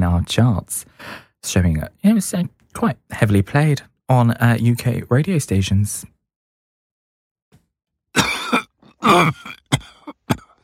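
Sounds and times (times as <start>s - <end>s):
speech: 0.2s - 6.1s, 9.0s - 9.6s
person coughing: 8.2s - 10.6s.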